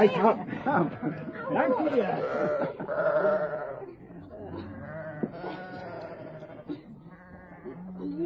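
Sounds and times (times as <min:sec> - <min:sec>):
laughter: 0:00.0 - 0:04.0
speech: 0:00.0 - 0:04.0
flock of sheep, young sheep and rams bleating: 0:01.0 - 0:03.9, 0:04.5 - 0:08.1.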